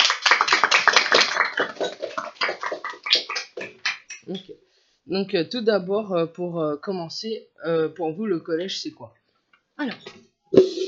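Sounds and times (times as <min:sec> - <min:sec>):
radio programme audience applauding to welcome a guest: 0:00.0 - 0:04.2
speech: 0:05.1 - 0:09.2, 0:09.8 - 0:10.8.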